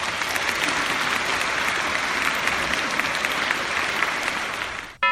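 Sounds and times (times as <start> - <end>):
crowd applauding commentators at a symposium: 0.0 - 5.0.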